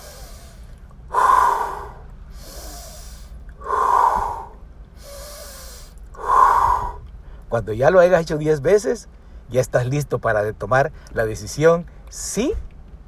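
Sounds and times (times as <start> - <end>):
deep breathing in a calming exercise: 0.0 - 7.5
speech: 7.5 - 12.7.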